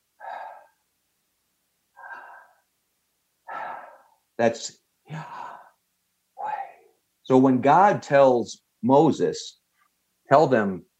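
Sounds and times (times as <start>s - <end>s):
breathy exhales: 0.2s - 0.8s, 2.0s - 2.6s, 3.5s - 4.2s, 6.4s - 6.9s
speech: 4.4s - 5.4s, 7.3s - 9.6s, 10.3s - 10.9s.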